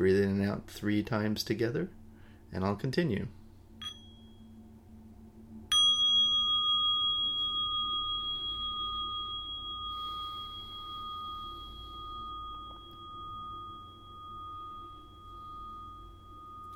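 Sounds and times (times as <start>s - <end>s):
speech: 0.0s - 3.4s
small mindfulness bell struck and ringing: 3.8s - 4.5s, 5.7s - 16.7s.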